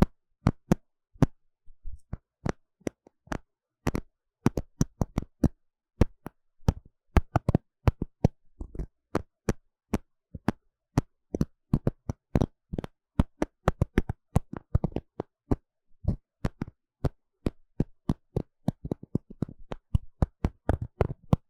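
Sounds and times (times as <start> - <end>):
crisp tapping and scratching on a microphone near the ear: 2.0 - 21.4.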